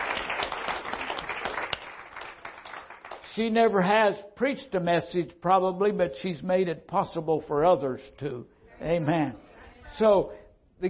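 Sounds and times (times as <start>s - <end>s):
audience applause: 0.0s - 3.2s
speech: 3.4s - 10.8s.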